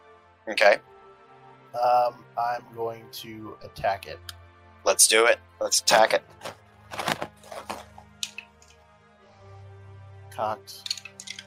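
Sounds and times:
speech: 0:00.5 - 0:00.9, 0:01.7 - 0:07.7, 0:10.4 - 0:10.9
dice rolling in a tray in a tabletop game: 0:10.8 - 0:11.4.

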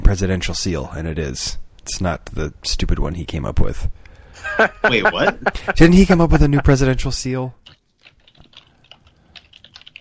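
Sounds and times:
speech: 0:00.1 - 0:07.7
laughter: 0:04.4 - 0:06.8
typing on a computer keyboard: 0:07.6 - 0:09.9.

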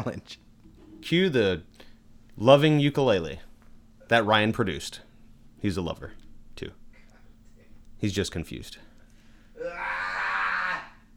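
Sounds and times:
speech: 0:00.0 - 0:01.8, 0:02.4 - 0:03.5, 0:04.1 - 0:06.8, 0:08.0 - 0:08.9
person screaming: 0:09.6 - 0:11.1.

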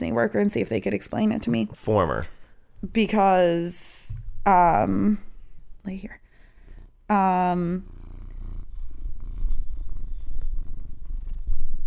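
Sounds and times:
speech: 0:00.0 - 0:06.2, 0:07.1 - 0:08.0
cat purring: 0:04.1 - 0:11.8.

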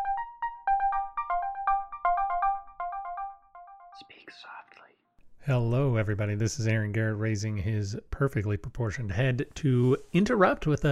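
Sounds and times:
melodic phone ringtone: 0:00.0 - 0:04.0
speech: 0:05.4 - 0:10.8.

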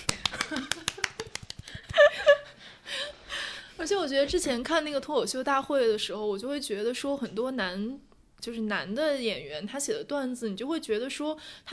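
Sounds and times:
small group clapping by hand: 0:00.0 - 0:02.1
speech: 0:03.9 - 0:11.7.

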